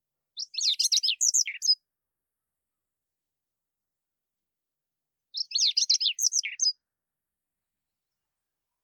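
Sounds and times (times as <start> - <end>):
Chestnut-eared Bunting song of quick scratchy chirps: 0.4 - 1.8, 5.3 - 6.8.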